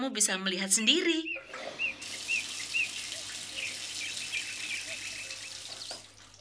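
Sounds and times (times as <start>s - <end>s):
speech: 0.0s - 1.8s
small birds chirping: 0.7s - 6.4s
water pouring onto plant soil as a plant is watered: 1.4s - 6.4s.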